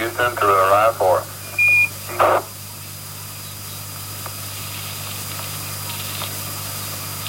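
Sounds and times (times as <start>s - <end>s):
low electrical hum: 0.0s - 7.2s
radio static hissing: 0.0s - 7.2s
short beep: 1.4s - 1.9s
crackle of radio noise: 2.0s - 7.2s.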